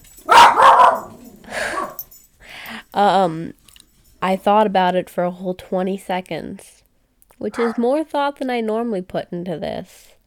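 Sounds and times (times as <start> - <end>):
dog barking: 0.2 - 2.0, 7.6 - 7.8
speech: 3.0 - 3.6, 4.2 - 6.8, 7.4 - 10.1.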